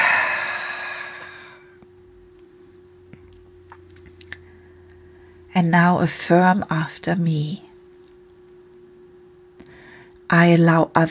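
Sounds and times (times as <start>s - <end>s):
long deep breath out during a guided breathing exercise: 0.0s - 1.8s
speech: 5.6s - 7.7s, 10.4s - 11.1s.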